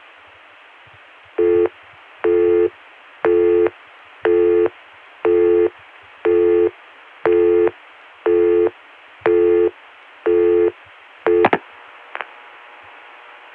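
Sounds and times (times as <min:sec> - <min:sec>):
PBX telephone busy signal: 0:01.4 - 0:02.7, 0:03.3 - 0:03.7, 0:04.3 - 0:04.7, 0:05.3 - 0:05.7, 0:06.3 - 0:06.7, 0:07.3 - 0:07.7, 0:08.3 - 0:08.7, 0:09.3 - 0:09.7, 0:10.3 - 0:11.6.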